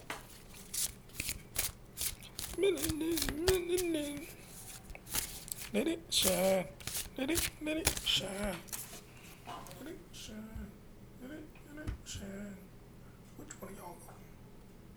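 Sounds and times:
deck of cards being shuffled: 0.0 - 9.8
speech: 2.6 - 4.4, 5.7 - 8.7.

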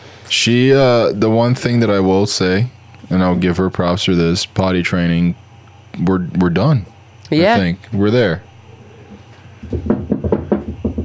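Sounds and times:
speech: 0.3 - 5.4, 6.0 - 8.5, 9.6 - 10.0
hard knocks on a wooden table: 9.6 - 11.0.

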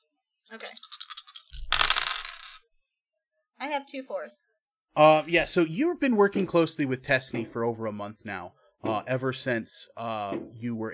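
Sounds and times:
speech: 0.5 - 0.9, 3.6 - 10.9
dice rattling in a cupped hand: 0.6 - 2.6.

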